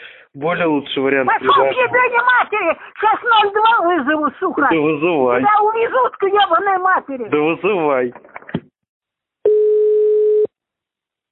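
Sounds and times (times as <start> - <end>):
speech: 0.4 - 8.3
telephone dial tone: 9.5 - 10.5.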